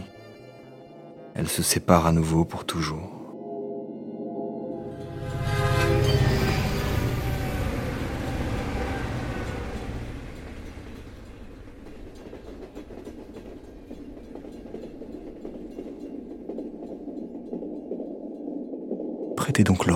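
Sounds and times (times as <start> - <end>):
speech: 1.4 - 3.2
railway wagon rolling with clickety-clack and low rumble: 5.3 - 19.9.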